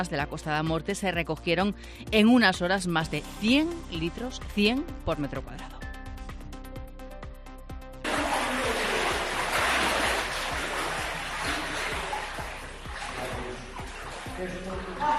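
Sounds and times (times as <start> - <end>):
speech: 0.0 - 5.8
knee-deep floodwater sloshing in a flooded building: 8.0 - 15.1.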